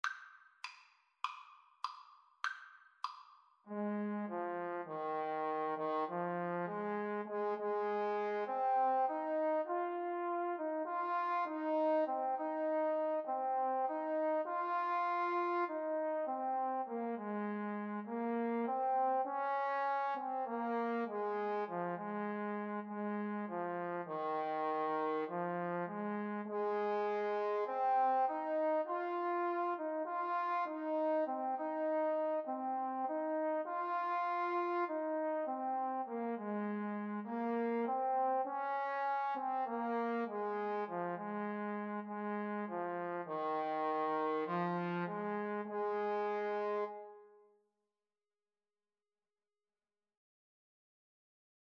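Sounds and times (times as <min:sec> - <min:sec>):
trombone duet: 0:03.7 - 0:47.0.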